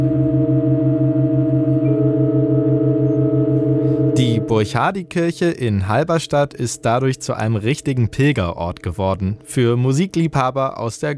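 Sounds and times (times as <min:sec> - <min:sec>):
sustained drone chord in a church: 0:00.0 - 0:08.4
newly added A4 held note: 0:00.0 - 0:08.6
pulsing low tone: 0:00.0 - 0:08.6
speech: 0:04.2 - 0:11.1.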